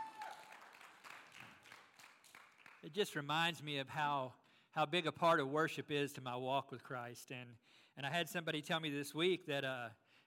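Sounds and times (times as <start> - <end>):
audience applauding the worship team: 0.0 - 2.9
speech: 2.8 - 10.0.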